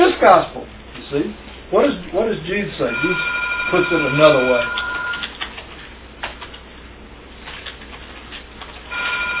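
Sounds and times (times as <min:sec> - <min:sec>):
speech: 0:00.2 - 0:04.8
telephone ringing with a steady electronic tone: 0:02.8 - 0:05.3, 0:08.9 - 0:09.3.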